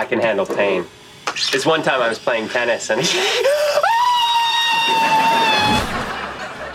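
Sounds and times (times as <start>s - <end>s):
speech: 0.0s - 3.9s
noise: 0.0s - 6.7s
laughter: 3.0s - 6.7s
woman screaming in pain during tattoo removal: 3.4s - 5.9s.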